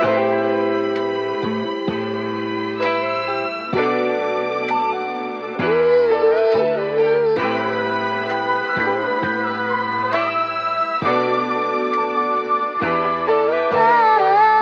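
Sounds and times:
guitar: 0.0 - 14.6
strings: 0.0 - 14.6
voice: 5.6 - 7.7, 13.4 - 14.6.

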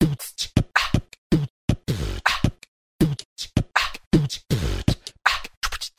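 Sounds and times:
beatbox drum loops: 0.0 - 5.9.

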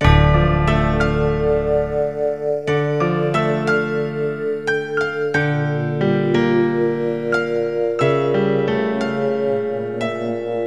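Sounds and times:
sad piano loop: 0.0 - 10.6.

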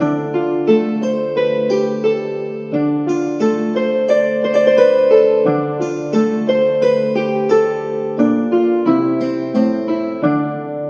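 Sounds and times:
harp-like electronic synth chords loop: 0.0 - 10.8.

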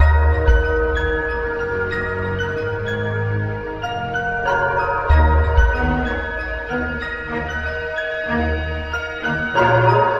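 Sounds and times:
sad keys and strings loops: 0.0 - 10.1.

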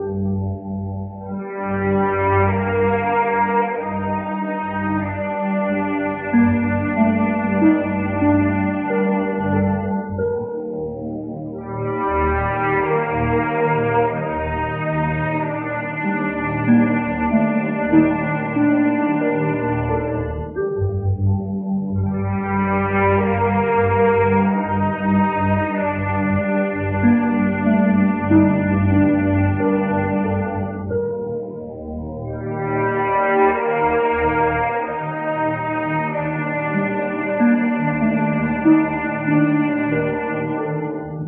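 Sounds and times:
sad string loop: 0.0 - 41.2.

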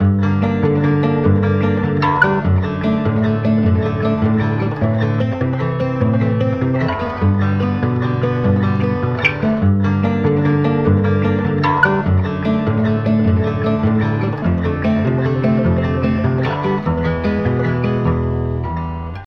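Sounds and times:
sad guitar loop: 0.0 - 19.2.

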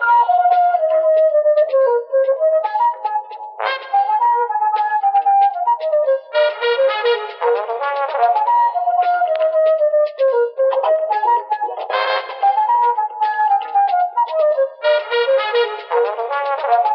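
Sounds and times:
flute: 0.0 - 16.9
horns: 3.6 - 4.4, 6.3 - 9.5, 10.8 - 12.8, 14.8 - 16.9.

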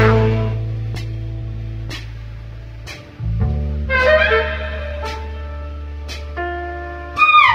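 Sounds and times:
jazz music loops: 0.0 - 7.5
horns squealing: 3.9 - 5.6, 7.2 - 7.5.

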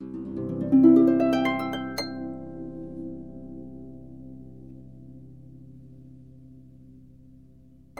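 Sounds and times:
harp notes rising: 0.0 - 5.5.

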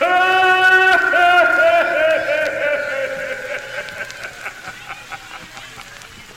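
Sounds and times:
voice exclaiming: 0.0 - 4.8
laughter with echo: 0.0 - 6.3.

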